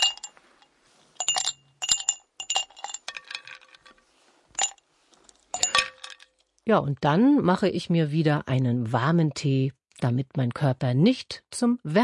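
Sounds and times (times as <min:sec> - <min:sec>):
ice cubes clinking and rattling against a glass: 0:00.0 - 0:00.4, 0:01.2 - 0:04.0, 0:04.6 - 0:04.8, 0:05.5 - 0:06.4
speech: 0:06.7 - 0:12.0.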